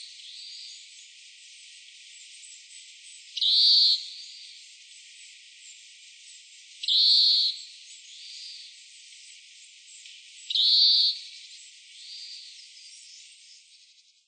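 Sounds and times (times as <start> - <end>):
Oriental Greenfinch calling in Utsunomiya: 3.4 - 4.1, 10.5 - 11.2.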